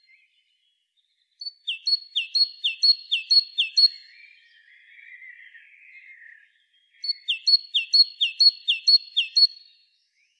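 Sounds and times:
great tit Parus major singing: 1.4 - 4.1, 7.0 - 9.6.

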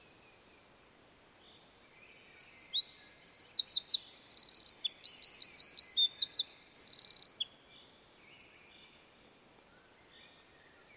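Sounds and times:
Eurasian wren Troglodytes troglodytes singing: 2.1 - 8.8.

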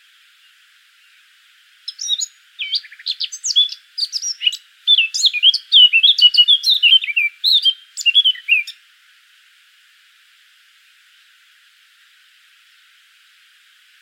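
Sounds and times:
Eurasian blackcap Sylvia atricapilla warbling song: 1.9 - 8.8.

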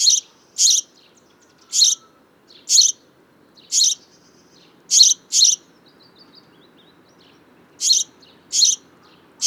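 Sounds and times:
house sparrow Passer domesticus giving short sharp high chirps: 0.0 - 1.0, 1.6 - 3.0, 3.6 - 4.3, 4.9 - 5.6, 6.7 - 9.4.

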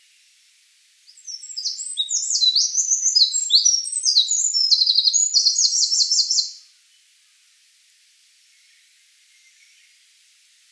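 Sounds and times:
Eurasian wren Troglodytes troglodytes singing: 1.1 - 6.6.

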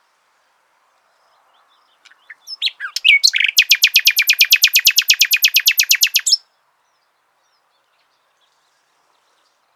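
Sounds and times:
common nightingale song phrase: 2.0 - 6.4.

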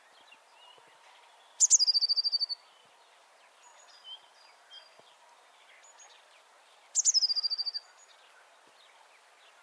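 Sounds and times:
faint soft Eurasian blue tit chirps: 0.0 - 9.6
Eurasian blue tit trills: 1.6 - 2.6, 7.0 - 7.9.

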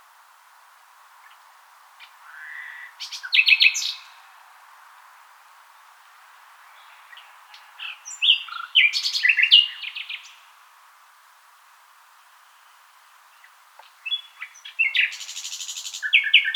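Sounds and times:
common nightingale Luscinia megarhynchos singing: 1.2 - 4.2, 6.6 - 10.6, 12.1 - 16.5.

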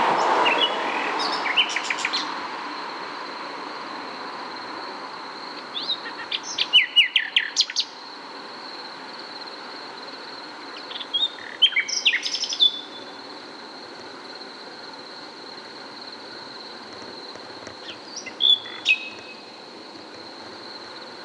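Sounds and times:
Common nightingale singing, Luscinia megarhynchos: 0.2 - 2.4, 5.5 - 8.0, 10.7 - 13.2, 17.7 - 19.6.

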